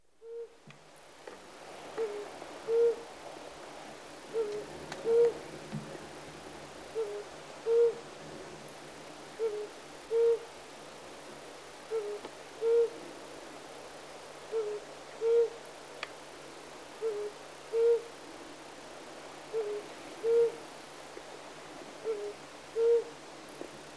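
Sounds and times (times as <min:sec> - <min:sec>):
Flammulated Owl Psiloscops flammeolus calling: 0:00.2 - 0:00.6, 0:02.0 - 0:03.1, 0:04.3 - 0:05.4, 0:06.9 - 0:08.0, 0:09.4 - 0:10.5, 0:11.9 - 0:13.1, 0:14.5 - 0:15.6, 0:17.0 - 0:18.1, 0:19.5 - 0:20.6, 0:22.0 - 0:23.1.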